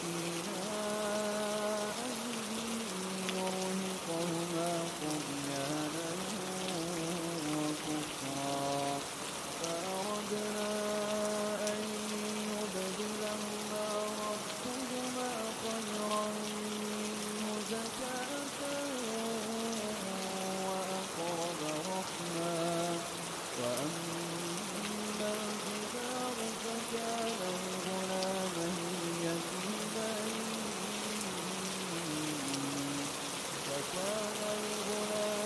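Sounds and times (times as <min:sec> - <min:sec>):
steady dense rain hiss: 0:00.0 - 0:35.4.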